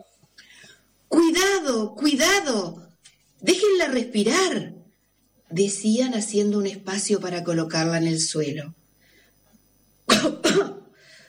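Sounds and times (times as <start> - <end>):
speech: 1.5 - 2.8, 3.4 - 4.8, 5.5 - 8.8
voice imitating a coughing turtle: 10.1 - 10.9.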